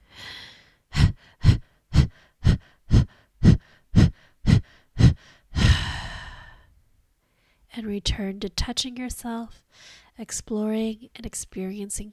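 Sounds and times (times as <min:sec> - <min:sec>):
fire breath rapid breathing exercise: 0:00.0 - 0:06.7
speech: 0:07.8 - 0:12.1.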